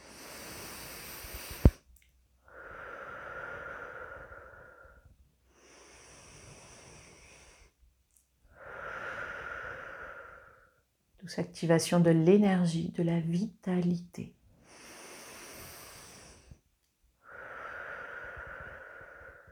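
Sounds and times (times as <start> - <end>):
slow breaths during a breathing exercise: 0.0 - 7.8, 8.5 - 10.9, 14.6 - 19.5
speech: 11.3 - 14.4.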